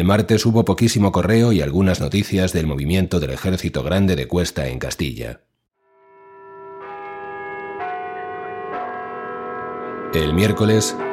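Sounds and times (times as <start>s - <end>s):
speech: 0.0s - 5.5s, 10.1s - 11.1s
church bells pealing: 6.0s - 11.1s.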